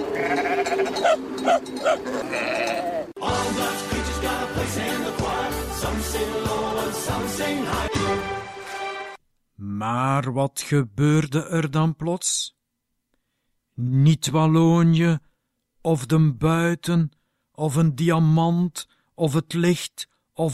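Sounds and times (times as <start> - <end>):
sheep and goats bleating: 0.1 - 1.2, 2.0 - 3.1
dense loud music: 3.2 - 8.7
speech: 9.8 - 12.5, 13.8 - 15.3, 15.9 - 20.5.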